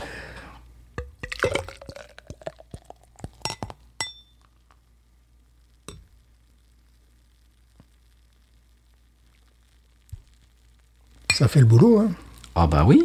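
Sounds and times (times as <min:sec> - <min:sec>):
beer glugging and splashing into a glass: 0:01.0 - 0:04.8
light glassy clinks: 0:03.4 - 0:04.5
speech: 0:11.4 - 0:13.0.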